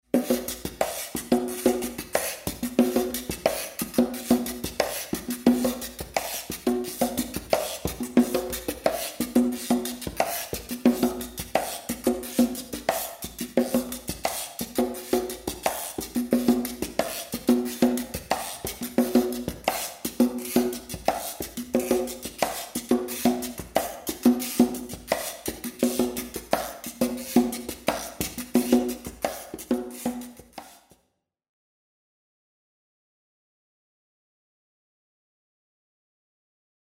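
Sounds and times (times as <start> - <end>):
percussion with reverb: 0.1 - 31.0.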